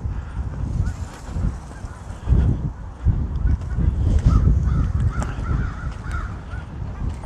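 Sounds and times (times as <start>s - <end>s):
low rumble of wind: 0.0s - 7.2s
flock of geese honking while flying overhead: 0.8s - 2.4s, 3.4s - 7.2s.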